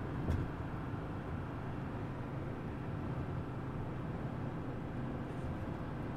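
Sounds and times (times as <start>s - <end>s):
road and engine noise inside a moving rusty car: 0.0s - 6.1s.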